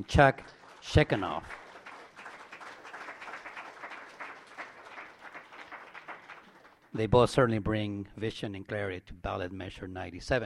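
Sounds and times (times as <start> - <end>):
speech: 0.0 - 1.6, 6.9 - 10.4
audience applause: 0.0 - 7.1.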